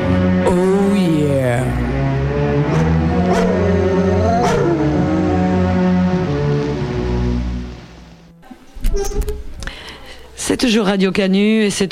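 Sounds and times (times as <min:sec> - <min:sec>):
low rumbling drone: 0:00.0 - 0:08.4
dogs barking: 0:02.6 - 0:05.4
speech: 0:10.6 - 0:11.9.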